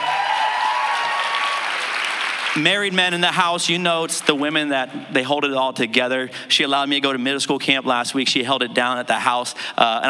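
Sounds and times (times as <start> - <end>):
large audience applauding: 0.0 - 3.2
speech: 2.6 - 10.0.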